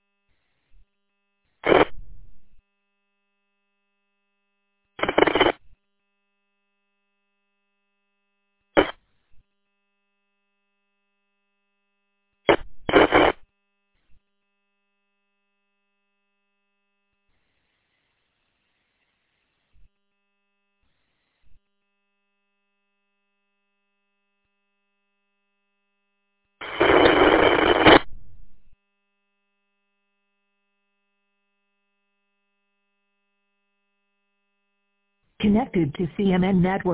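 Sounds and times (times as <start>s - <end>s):
garbled radio transmission static bursts failing to access repeater: 1.6s - 2.0s, 5.0s - 5.6s, 8.8s - 9.0s, 12.5s - 13.4s, 26.6s - 28.2s, 35.4s - 36.9s
speech: 35.4s - 36.9s.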